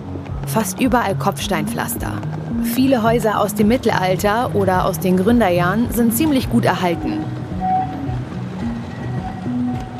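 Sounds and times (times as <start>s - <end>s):
old tram rumbling past on a city street: 0.0s - 9.9s
speech: 0.5s - 7.3s
old tram motor whining: 5.0s - 9.9s.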